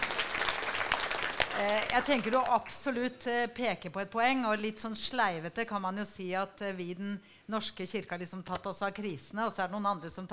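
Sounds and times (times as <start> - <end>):
audience clapping: 0.0 - 2.8
speech: 1.6 - 10.3.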